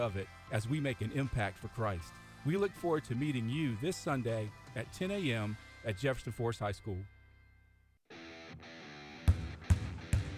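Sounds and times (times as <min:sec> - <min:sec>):
speech: 0:00.0 - 0:07.2
basketball thumping on a hard court: 0:09.2 - 0:10.3.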